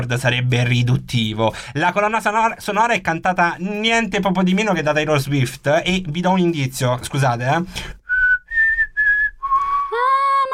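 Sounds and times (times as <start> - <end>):
speech: 0.0 - 8.0
person whistling a short four-note tune: 8.0 - 10.0.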